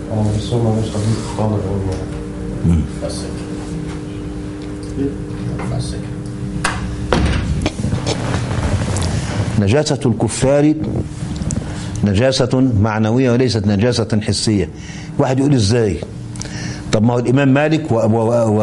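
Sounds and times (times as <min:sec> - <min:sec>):
speech: 0:00.1 - 0:03.5, 0:05.0 - 0:06.7, 0:09.6 - 0:11.2, 0:12.0 - 0:18.6
wooden door pushed shut with a dull thud: 0:07.1 - 0:07.6
scraping and rubbing noises: 0:07.4 - 0:09.6.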